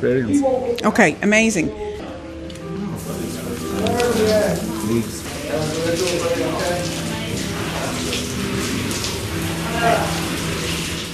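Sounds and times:
speech: 0.0 - 1.9, 3.8 - 7.0, 9.8 - 10.2
faint voices murmuring: 0.0 - 10.6
cold shower water running: 2.9 - 11.1.

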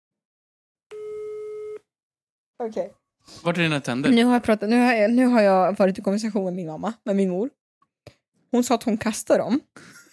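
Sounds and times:
telephone dial or ringing tone: 0.9 - 1.9
speech: 2.6 - 7.6, 8.5 - 10.0.

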